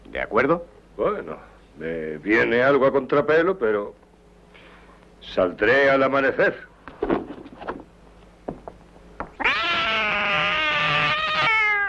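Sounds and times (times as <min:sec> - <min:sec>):
speech: 0:00.2 - 0:04.0, 0:05.2 - 0:07.1
scattered knocks and rustling thumps: 0:06.9 - 0:09.4
drunk cat giving a long loud wavering yowl: 0:09.4 - 0:11.8.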